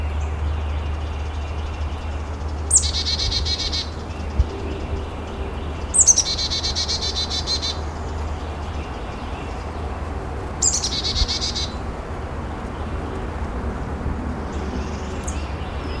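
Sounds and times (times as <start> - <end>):
chickadee chick-a-dee calls: 0.0 - 9.8, 10.6 - 11.8
steady low hum: 0.0 - 15.9.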